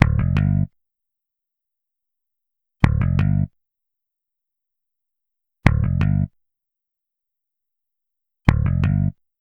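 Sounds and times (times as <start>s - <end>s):
East Coast hip hop electric bass in G minor: 0.0s - 0.7s, 2.8s - 3.5s, 5.7s - 6.3s, 8.5s - 9.2s.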